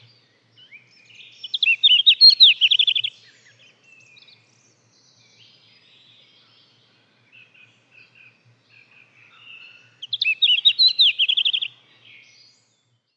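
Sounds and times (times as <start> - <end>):
Red-flanked bluetail song: 0.0 - 13.1.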